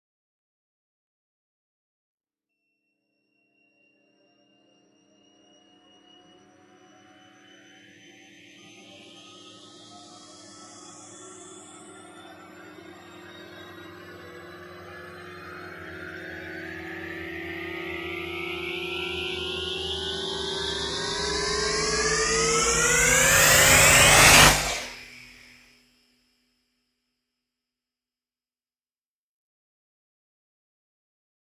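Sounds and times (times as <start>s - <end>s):
hyperbolic riser effect: 16.4s - 25.4s.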